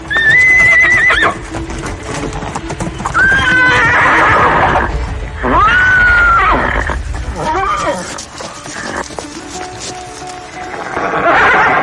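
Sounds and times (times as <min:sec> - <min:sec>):
heavy hoof thuds and scraping on the ground: 0:00.0 - 0:11.8
horse whinnying loudly and fiercely: 0:00.1 - 0:01.4, 0:03.2 - 0:09.1, 0:10.8 - 0:11.8.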